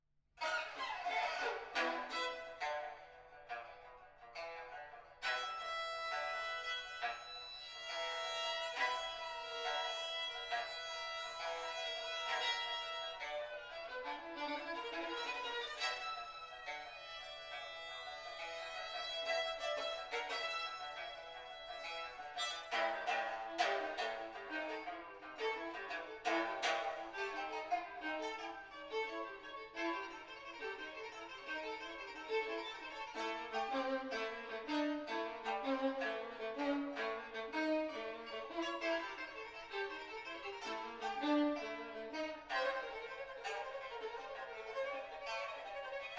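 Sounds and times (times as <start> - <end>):
pipa: 0.4 - 46.1
violin: 0.4 - 46.1.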